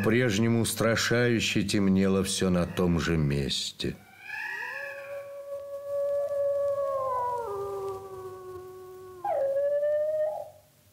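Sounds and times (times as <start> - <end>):
speech: 0.0 - 4.0
wolves howling together: 4.2 - 10.6.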